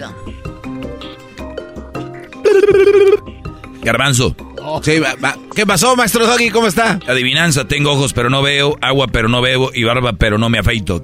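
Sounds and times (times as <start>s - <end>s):
telephone ring tone while a call is placed: 2.4s - 3.2s
speech: 3.8s - 11.0s.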